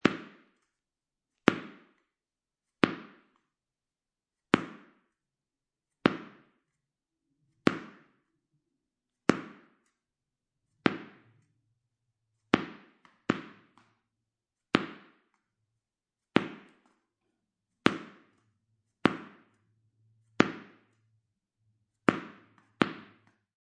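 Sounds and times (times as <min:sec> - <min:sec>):
tennis ball bouncing on concrete: 0:00.0 - 0:00.7, 0:01.4 - 0:02.1, 0:02.7 - 0:03.5, 0:04.5 - 0:05.2, 0:05.9 - 0:06.8, 0:07.6 - 0:08.3, 0:09.2 - 0:10.0, 0:10.7 - 0:11.5, 0:12.4 - 0:14.0, 0:14.6 - 0:15.5, 0:16.2 - 0:17.1, 0:17.7 - 0:21.2, 0:21.9 - 0:23.5.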